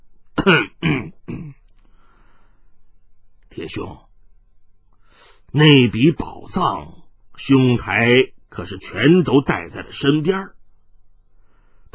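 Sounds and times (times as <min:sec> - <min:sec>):
speech: 0:00.4 - 0:00.9, 0:03.6 - 0:04.1, 0:05.5 - 0:10.6
dry cough clearing the throat: 0:00.4 - 0:01.6.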